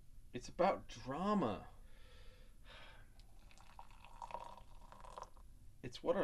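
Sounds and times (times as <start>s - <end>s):
speech: 0.4s - 1.8s, 5.8s - 6.2s
tea trickling into a cup: 3.2s - 5.5s.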